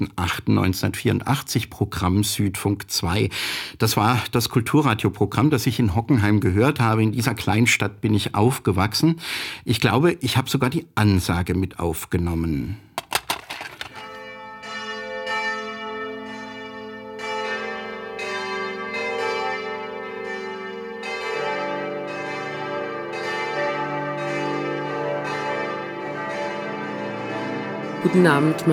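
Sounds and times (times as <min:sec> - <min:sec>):
speech: 0:00.0 - 0:12.9, 0:28.1 - 0:28.7
church bells of a collegiate church ringing for a special church service: 0:14.1 - 0:28.7.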